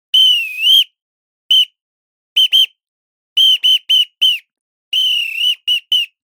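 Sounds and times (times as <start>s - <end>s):
coach referee whistle: 0.1s - 0.9s, 1.5s - 1.7s, 2.4s - 2.7s, 3.4s - 4.4s, 5.0s - 6.2s.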